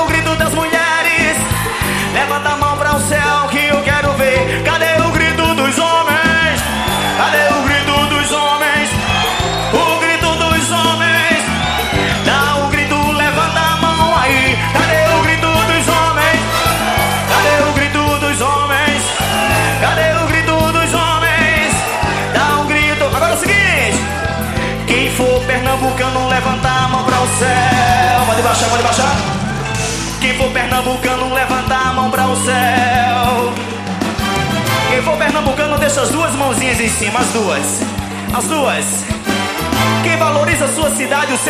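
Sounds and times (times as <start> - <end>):
crowd of women screaming and cheering: 0.0 - 41.4
pounding live music with heavy bass: 0.0 - 41.4
speech: 35.0 - 39.2, 39.8 - 41.4.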